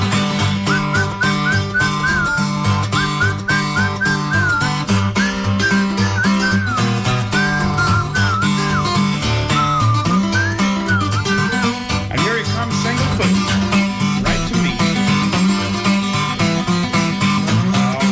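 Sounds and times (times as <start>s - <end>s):
person whistling a rising-and-falling tune to call a horse: 0.0s - 12.0s
loud instrumental music with a regular beat: 0.0s - 18.1s.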